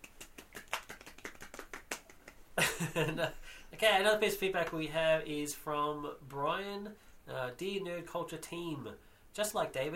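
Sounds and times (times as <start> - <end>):
hand clapping: 0.0 - 2.8
speech: 2.8 - 9.9.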